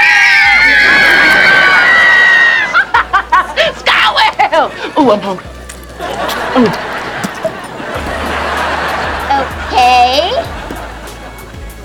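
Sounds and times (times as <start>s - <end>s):
group of people screaming together: 0.0s - 2.9s
people giggling and laughing: 0.8s - 3.9s, 5.9s - 11.7s
speech: 5.0s - 5.6s, 6.6s - 6.9s.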